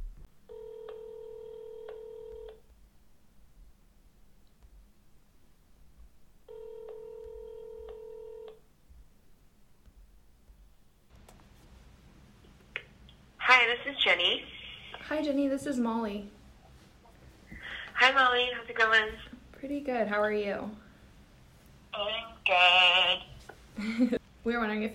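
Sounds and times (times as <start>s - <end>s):
phone line ringing with electronic tone: 0.5s - 2.6s, 6.5s - 8.5s
speech: 13.6s - 16.4s, 18.0s - 20.8s, 22.0s - 24.9s.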